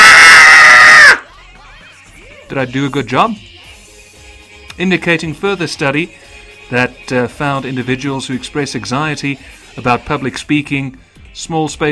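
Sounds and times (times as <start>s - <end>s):
person screaming high-pitched: 0.0s - 1.2s
speech: 2.5s - 3.6s, 4.8s - 11.9s.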